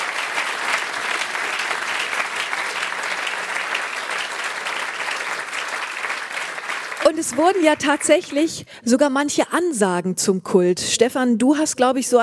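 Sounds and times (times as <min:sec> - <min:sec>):
studio audience applause: 0:00.0 - 0:08.2
speech: 0:07.1 - 0:12.2.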